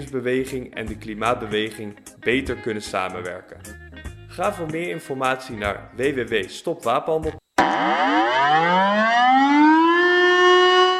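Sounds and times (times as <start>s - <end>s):
speech: 0.0s - 8.9s
air raid siren wailing: 7.6s - 10.9s.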